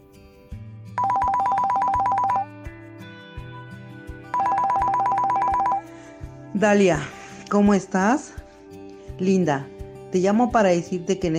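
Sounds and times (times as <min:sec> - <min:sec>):
mobile phone ringtone with rapid high-pitched electronic trill: 0:01.0 - 0:02.5, 0:04.3 - 0:06.0
speech: 0:06.6 - 0:08.4, 0:09.2 - 0:11.3.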